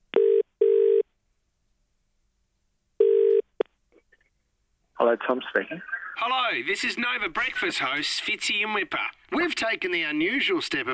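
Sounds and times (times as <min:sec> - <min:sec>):
telephone double-burst ringback tone on outgoing call: 0:00.2 - 0:01.0, 0:03.0 - 0:03.4
speech: 0:05.0 - 0:10.9.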